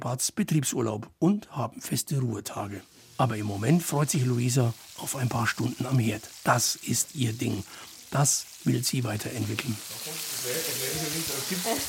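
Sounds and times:
speech: 0.0s - 11.8s
schnitzel of the farm's own pork frying in a pan in a farm restaurant kitchen: 2.4s - 11.8s.

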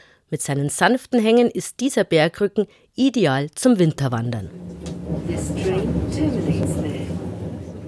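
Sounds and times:
speech: 0.3s - 7.2s
packed train from Munich rumbling as it arrives at Garmisch-Partenkirchen station: 4.5s - 7.8s
passengers including skiers with luggage chattering: 5.2s - 7.8s.

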